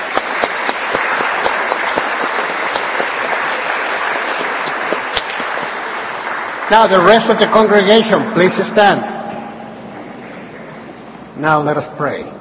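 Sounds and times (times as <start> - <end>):
audience applause: 0.0 - 8.8
speech: 6.7 - 9.2, 11.4 - 12.4.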